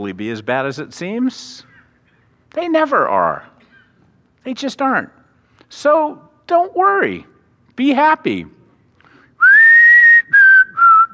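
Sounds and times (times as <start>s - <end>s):
speech: 0.0s - 1.7s, 2.5s - 3.5s, 4.4s - 8.6s
person whistling a tune: 9.4s - 11.1s.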